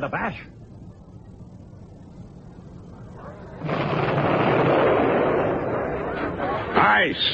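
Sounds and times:
speech: 0:00.0 - 0:00.7, 0:07.0 - 0:07.3
explosions of a distant battle: 0:02.8 - 0:07.3
gunfire of a distant battle: 0:03.6 - 0:06.6.

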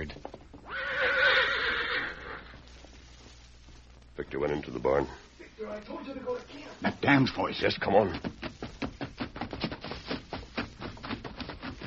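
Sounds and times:
speech: 0:00.0 - 0:00.3, 0:04.4 - 0:08.5
horse whinnying at a barn entrance: 0:00.6 - 0:02.6.

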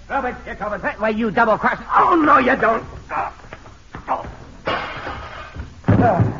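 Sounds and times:
speech: 0:00.1 - 0:03.4
scuffle of thumps and bumps: 0:02.7 - 0:06.3.

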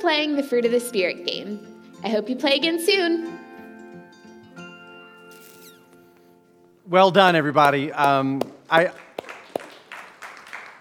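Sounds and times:
speech: 0:00.0 - 0:03.4, 0:06.9 - 0:09.0
scattered hand claps: 0:07.6 - 0:10.8.

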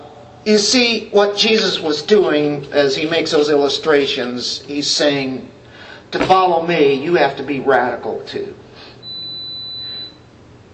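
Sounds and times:
quiet room hum: 0:00.0 - 0:10.7
speech: 0:00.4 - 0:08.6
timer alarm high-pitched electronic beep: 0:09.0 - 0:10.2.

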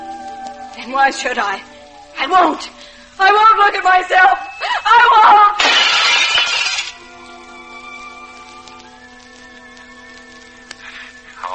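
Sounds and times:
speech: 0:00.8 - 0:05.4
glass shards settling and tinkling: 0:05.6 - 0:07.0
mirror glass crashing: 0:05.6 - 0:07.0.

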